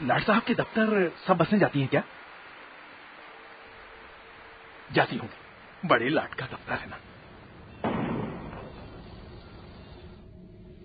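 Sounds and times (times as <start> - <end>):
speech: 0.0 - 2.2, 4.9 - 7.1
gunshot during a riot in the city: 7.8 - 9.6.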